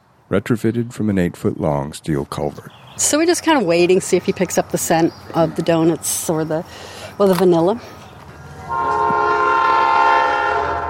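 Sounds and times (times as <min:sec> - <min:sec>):
speech: 0:00.3 - 0:08.0
rolling noise of the passing train: 0:03.0 - 0:10.8
loud train horn blaring a sustained chord: 0:08.6 - 0:10.8.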